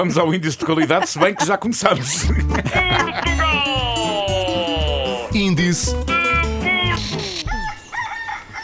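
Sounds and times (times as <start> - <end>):
speech: 0.0 - 3.9, 5.4 - 6.2
laughter: 0.4 - 5.3
rooster throaty clucks and squawks: 7.0 - 8.6
rooster crowing: 7.4 - 8.6.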